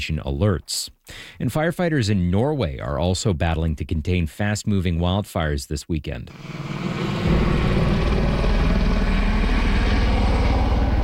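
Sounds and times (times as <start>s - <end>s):
speech: 0.0s - 7.4s
helicopters flying over wildfire: 6.3s - 11.0s.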